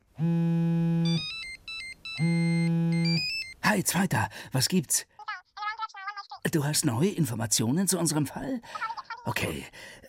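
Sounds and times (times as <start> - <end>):
speech: 0.2 - 0.4, 3.7 - 5.2, 6.5 - 10.0
electronic telephone ringtone signalling an incoming call: 1.0 - 3.6.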